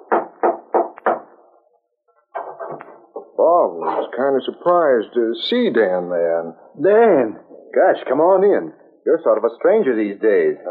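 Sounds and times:
knocking on a wooden door: 0.0 - 1.3
speech: 2.8 - 10.6.

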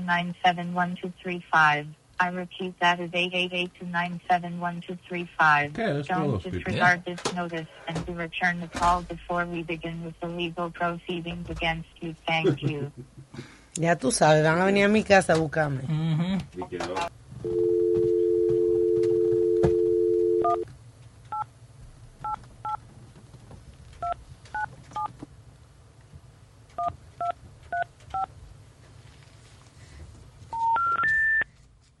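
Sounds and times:
faint hum: 0.0 - 31.9
speech: 0.1 - 17.8
laughter: 12.4 - 13.3
telephone dial tone: 17.4 - 20.6
telephone keypad beeps: 18.5 - 20.6.

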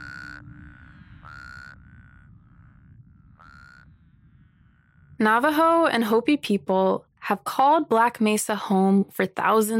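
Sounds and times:
toads croaking in loud buzzy bursts: 0.0 - 5.2
faint trilling: 0.0 - 5.4
steady low rumble: 0.0 - 7.4
speech: 5.2 - 9.7.

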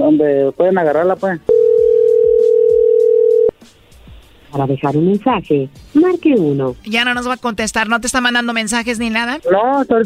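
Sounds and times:
speech: 0.1 - 1.6, 4.5 - 10.0
phone tone after the call hangs up: 1.5 - 3.5.

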